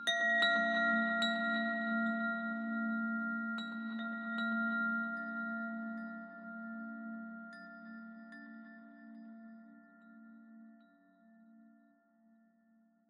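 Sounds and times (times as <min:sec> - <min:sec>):
high abstract ambient chimes: 0:00.0 - 0:09.3.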